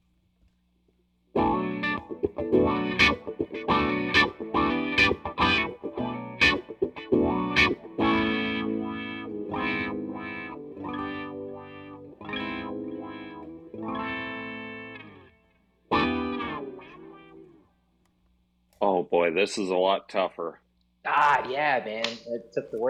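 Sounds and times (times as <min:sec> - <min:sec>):
electric guitar played through a wah pedal: 0:01.4 - 0:17.6
speech: 0:19.1 - 0:20.6, 0:21.2 - 0:22.8.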